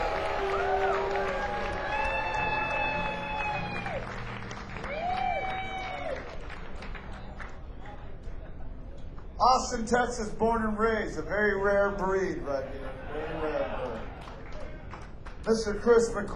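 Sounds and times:
loud whoops from a live crowd: 0:00.0 - 0:04.2, 0:04.8 - 0:06.5
live crowd applause: 0:00.0 - 0:08.2, 0:13.4 - 0:15.5
speech: 0:09.5 - 0:13.6, 0:15.4 - 0:16.3.

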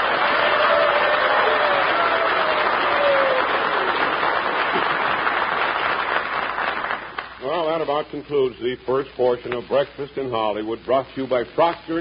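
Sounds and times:
faint whoops from a studio audience: 0:00.0 - 0:04.2
studio audience applauding and cheering for a football team: 0:00.0 - 0:07.6
speech: 0:08.0 - 0:11.9.

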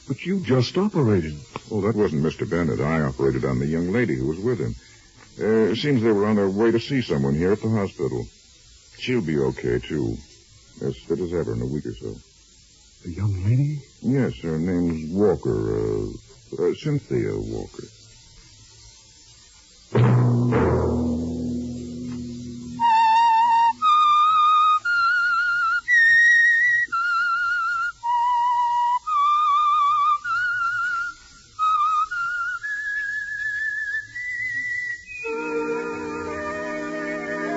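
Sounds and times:
speech: 0:00.1 - 0:08.4, 0:09.0 - 0:12.3, 0:13.0 - 0:18.0, 0:19.9 - 0:21.0
low musical chord: 0:20.0 - 0:23.0
whistled theme melody: 0:22.6 - 0:37.5.

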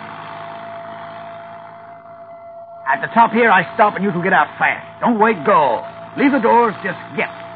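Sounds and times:
car engine running while driven on a slippery road: 0:00.0 - 0:07.5
faint steady hum: 0:00.0 - 0:07.5
speech: 0:02.9 - 0:07.4.

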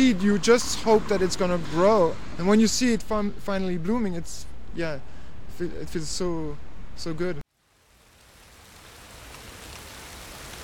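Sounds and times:
speech: 0:00.0 - 0:07.4
steady rain pattering on soil and plants of a newly planted flowerbed in Camden: 0:07.5 - 0:10.6.

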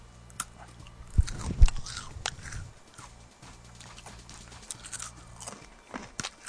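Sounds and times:
chewing and mouth noises: 0:00.3 - 0:06.4
crunching bites of a slightly stale blueberry-flavoured triangular cracker: 0:01.2 - 0:03.1, 0:03.8 - 0:06.4.

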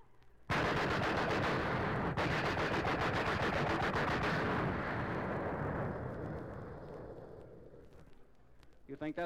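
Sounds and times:
machine gun firing a long rapid-fire burst: 0:00.5 - 0:06.9
speech: 0:09.0 - 0:09.2.

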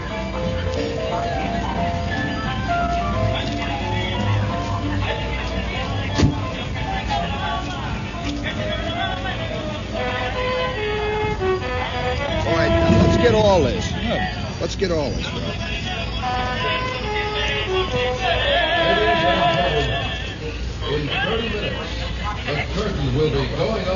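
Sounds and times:
dense noisy fairground crowd: 0:00.0 - 0:23.9
horns blowing at a fairground: 0:09.9 - 0:20.4
speech: 0:14.8 - 0:15.8.

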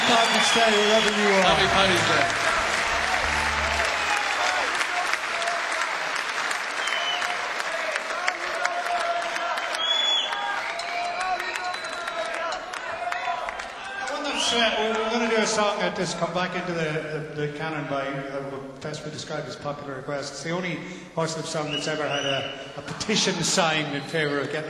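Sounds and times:
crowd voices and whoops: 0:00.0 - 0:05.8, 0:06.8 - 0:15.2
live audience applause: 0:00.0 - 0:15.3
speech: 0:00.1 - 0:02.5, 0:15.6 - 0:24.6.

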